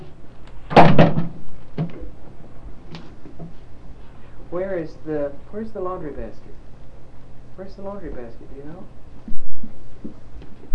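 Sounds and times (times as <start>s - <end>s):
bathroom door swinging and bumping shut: 0.7s - 1.4s
speech: 4.9s - 6.7s, 7.6s - 10.2s.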